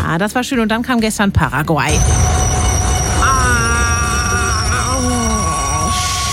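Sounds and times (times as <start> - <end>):
speech: 0.1 - 2.5
train wheels squealing while braking: 2.0 - 6.3.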